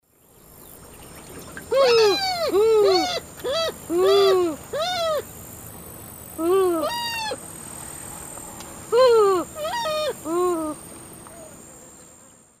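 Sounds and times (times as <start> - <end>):
group of Porphyrula martinica calling in Eastern Lowlands of South America: 1.4 - 5.5, 8.9 - 11.6.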